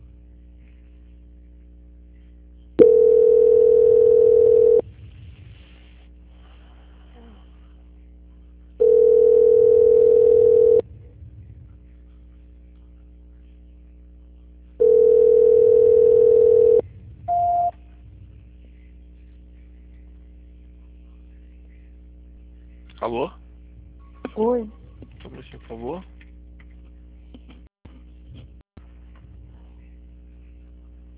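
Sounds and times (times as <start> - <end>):
telephone ringback tones during a call transfer: 2.8 - 4.8, 8.8 - 10.8, 14.8 - 17.7.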